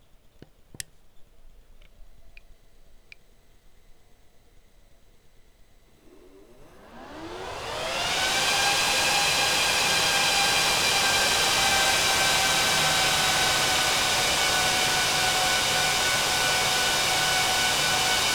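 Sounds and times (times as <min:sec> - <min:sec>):
server fans: 0:06.0 - 0:18.3.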